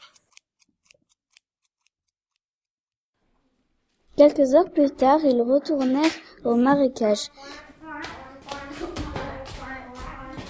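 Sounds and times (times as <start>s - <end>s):
scissors snipping: 0.0s - 2.4s
speech: 4.2s - 7.6s.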